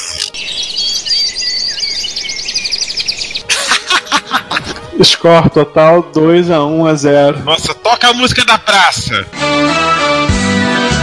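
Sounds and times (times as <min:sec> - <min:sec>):
Australian bird mimicking a dial-up modem: 0:00.0 - 0:03.5
laughter: 0:03.5 - 0:05.2
speech: 0:05.0 - 0:10.0.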